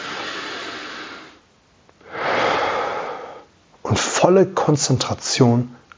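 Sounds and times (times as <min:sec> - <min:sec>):
slow deep belly breathing: 0:00.0 - 0:01.4, 0:02.0 - 0:03.6
speech: 0:04.0 - 0:05.8.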